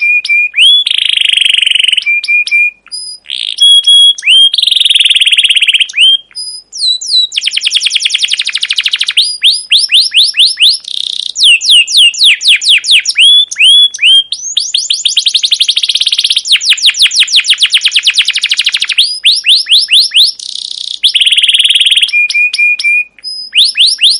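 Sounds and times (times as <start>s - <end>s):
captive canary singing a cuit cuit chirping song: 0.0s - 24.1s.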